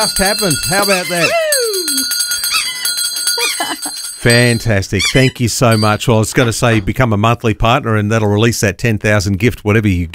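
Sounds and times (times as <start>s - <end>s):
speech: 0.0s - 1.4s, 3.8s - 10.1s
bell rung during a fundraising appeal: 0.0s - 6.8s.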